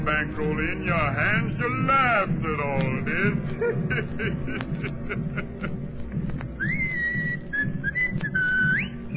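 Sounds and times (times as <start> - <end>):
speech: 0.0 - 6.8
steady low rumble: 0.0 - 9.1
laughter: 3.2 - 6.3
person whistling a short wavering tune: 6.6 - 9.1.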